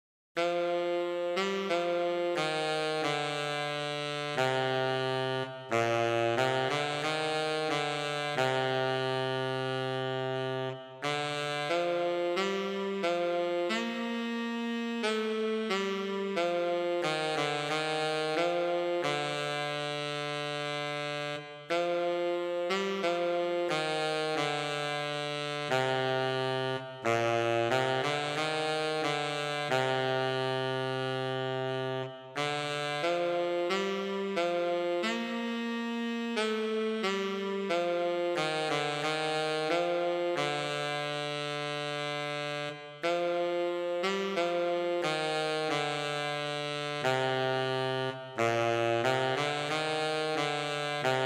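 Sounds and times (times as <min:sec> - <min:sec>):
solo tenor saxophone: 0:00.4 - 0:51.2.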